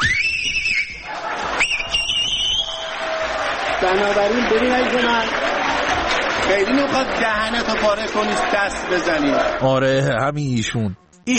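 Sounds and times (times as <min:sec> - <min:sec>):
young man in an audience whistling loudly with fingers in his mouth: 0:00.0 - 0:01.0, 0:01.6 - 0:02.9
noisy crowd: 0:00.0 - 0:10.9
speech: 0:03.9 - 0:11.3.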